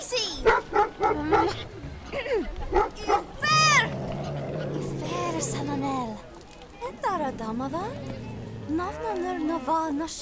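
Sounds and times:
big dog barking: 0.4s - 1.8s, 2.6s - 9.2s
speech: 7.6s - 10.2s.

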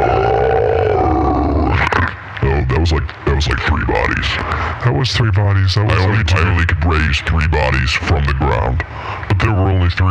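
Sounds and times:
person loudly imitating a roar with a throaty bellow: 0.0s - 1.9s
laughter: 3.5s - 7.1s
speech: 5.0s - 10.0s.

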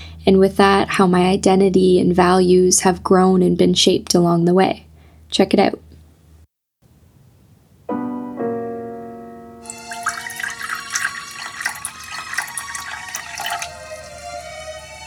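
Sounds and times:
speech: 0.3s - 5.8s
ringing ceramic clink: 9.7s - 13.7s
coffee poured into a cup in a student home living room: 9.7s - 15.0s.

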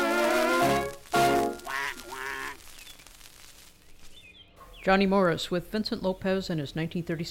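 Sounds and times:
duck quacking: 1.3s - 2.6s
speech: 4.8s - 7.2s.

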